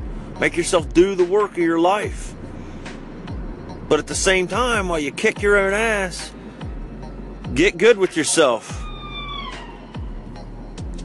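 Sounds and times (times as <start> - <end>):
steady low road rumble: 0.0 - 11.0
speech: 0.4 - 2.4, 3.9 - 6.4, 7.5 - 8.8
ambulance siren wailing past: 8.6 - 10.8.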